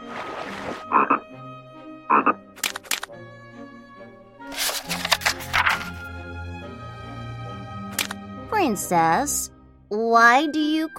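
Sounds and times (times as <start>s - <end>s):
gentle sustained music: 0.0s - 10.9s
frog croaking in short raspy bursts: 2.1s - 2.4s
speech: 8.7s - 10.9s.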